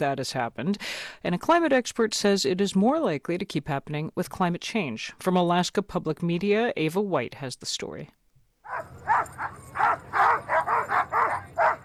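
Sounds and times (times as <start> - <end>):
speech: 0.0 - 11.8
hundreds of sled dogs barking and yipping at a race start in Fairbanks: 8.6 - 11.8.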